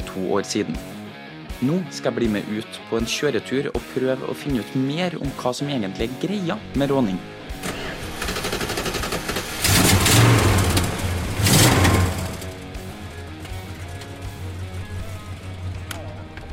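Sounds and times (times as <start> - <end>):
speech: 0.2 - 1.0, 1.6 - 7.8
black 1966 Chrysler Newport engine revving and idling in Volda: 7.4 - 16.0.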